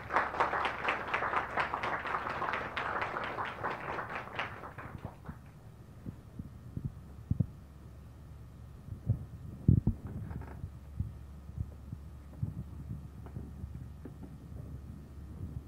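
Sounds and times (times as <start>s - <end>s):
audience applause welcoming a speaker: 0.0s - 5.6s
soft low thumps: 6.0s - 7.6s, 8.9s - 15.6s.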